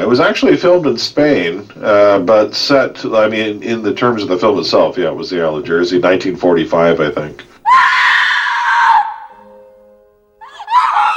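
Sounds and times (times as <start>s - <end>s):
speech: 0.0s - 8.0s
woman screaming as she wakes: 7.6s - 9.4s, 10.4s - 11.1s.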